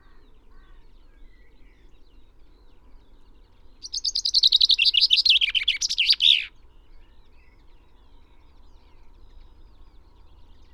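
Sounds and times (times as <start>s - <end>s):
Common chaffinch Fringilla coelebs singing: 3.8s - 6.5s.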